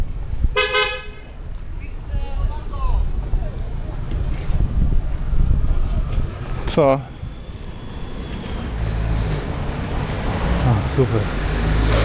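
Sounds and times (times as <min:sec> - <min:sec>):
street traffic rumble: 0:00.0 - 0:12.0
wind: 0:00.0 - 0:12.0
sharp car horn blast: 0:00.6 - 0:01.2
speech: 0:06.8 - 0:07.1, 0:11.0 - 0:11.5.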